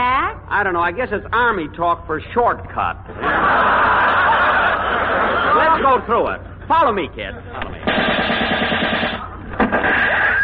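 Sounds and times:
speech: 0.5s - 3.8s, 5.6s - 8.8s
laughter: 3.1s - 6.7s
machine-gun fire on an army infiltration training course: 7.8s - 10.4s.

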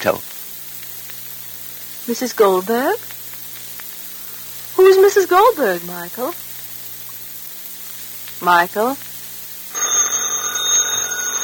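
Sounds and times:
speech: 0.0s - 0.4s, 2.1s - 3.1s, 4.8s - 6.5s, 8.4s - 9.1s
telephone ringing with bright trilling bell tone: 9.7s - 11.4s.

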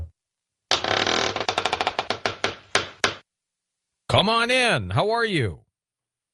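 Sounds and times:
secret door opening sound effect with creaking clunks and rattling clicks: 0.8s - 3.2s
speech: 4.2s - 5.7s.

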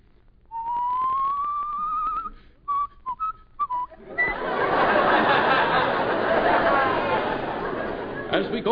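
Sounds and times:
person whistling imitating the south wind: 0.5s - 4.4s
laughter: 4.0s - 8.7s
speech: 8.5s - 8.7s.

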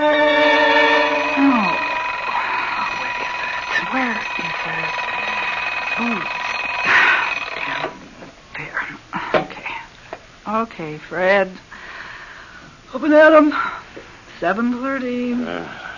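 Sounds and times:
alarm clock ringing: 0.1s - 8.0s
speech: 10.8s - 11.7s, 13.0s - 13.7s, 14.4s - 15.8s.

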